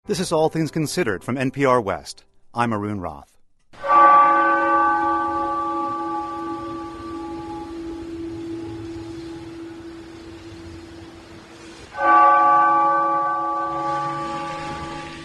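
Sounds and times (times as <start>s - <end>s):
speech: 0.1s - 3.4s
church bell tolling in Newtown Connecticut: 3.8s - 15.2s.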